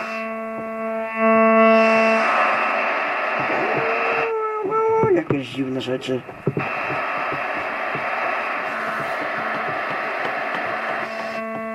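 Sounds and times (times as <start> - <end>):
droning buzzy radio interference tones: 0.0 - 11.7
long-wave radio static hiss from a radio inside a tower: 0.0 - 11.7
speech: 5.3 - 6.8.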